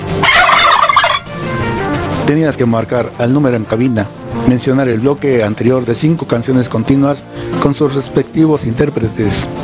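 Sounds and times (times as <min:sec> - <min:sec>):
turkey gobbling: 0:00.2 - 0:01.4
speech: 0:02.3 - 0:09.6.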